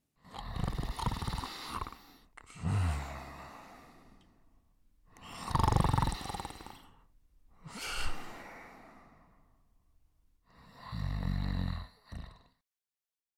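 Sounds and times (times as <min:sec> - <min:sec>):
loud rasping snores: 0:00.2 - 0:04.1, 0:05.1 - 0:08.9, 0:10.5 - 0:12.6.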